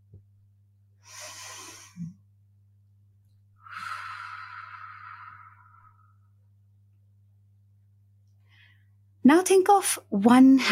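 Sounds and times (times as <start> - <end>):
slow deep breath taken softly: 1.0 - 2.2, 3.6 - 6.5, 8.4 - 9.0
speech: 9.3 - 10.7.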